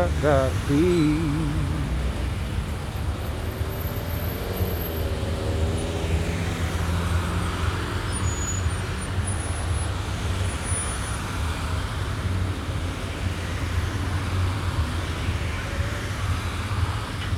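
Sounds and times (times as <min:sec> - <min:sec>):
bus engine rumbling in street traffic: 0:00.0 - 0:17.3
cars in steady street traffic: 0:00.0 - 0:17.3
speech: 0:00.2 - 0:01.7.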